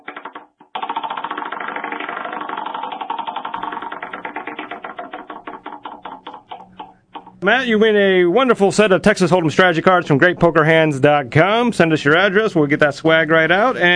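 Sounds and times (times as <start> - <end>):
game show wheel clicker ratcheting as the wheel is spun: 0.0 - 7.6
speech: 7.4 - 13.9.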